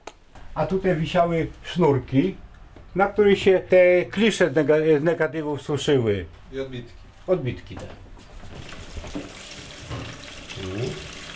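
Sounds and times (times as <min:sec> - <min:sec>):
speech: 0:00.6 - 0:08.1
liquid poured gently into a tray near photographic negatives: 0:08.6 - 0:11.3
person murmuring: 0:10.6 - 0:11.1.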